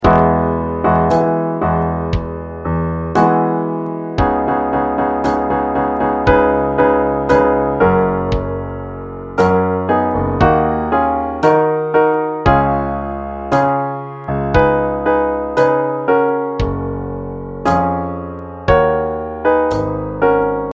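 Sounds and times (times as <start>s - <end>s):
piano: 0.0s - 20.7s
drum: 2.2s - 2.4s.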